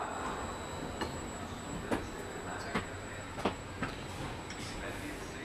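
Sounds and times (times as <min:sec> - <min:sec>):
sleeper train carriage interior rumble: 0:00.1 - 0:05.4.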